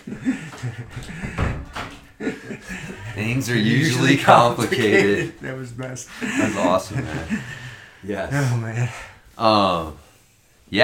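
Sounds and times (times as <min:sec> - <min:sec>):
laughter: 0:00.0 - 0:09.1
door swinging shut with a dull solid thud: 0:00.9 - 0:02.2
speech: 0:03.2 - 0:10.0.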